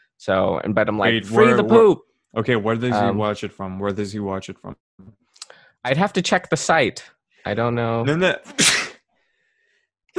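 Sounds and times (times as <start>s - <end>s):
speech: 0.2s - 5.2s, 5.8s - 8.8s
single sharp loud sneeze: 8.5s - 9.0s.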